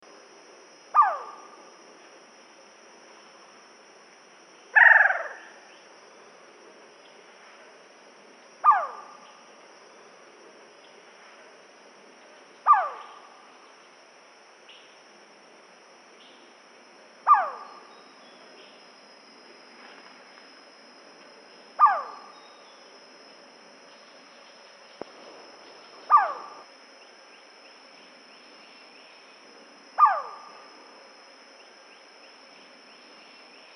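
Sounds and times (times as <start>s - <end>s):
Malayan banded pitta Hydrornis irena calling: 0.9s - 1.6s, 4.7s - 5.9s, 8.6s - 9.5s, 12.6s - 13.4s, 17.2s - 18.9s, 21.7s - 22.9s, 23.9s - 29.4s, 30.0s - 30.7s.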